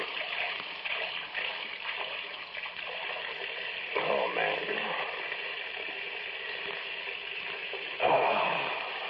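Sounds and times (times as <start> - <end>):
tap water running into a glass in a small kitchen: 0.0 - 9.0
man muttering: 8.0 - 9.0.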